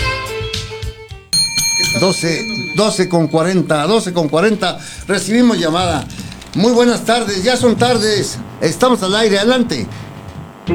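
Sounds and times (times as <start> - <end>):
bright bell ringing with sustained shimmering tones: 1.4 - 9.9
speech: 2.0 - 10.0.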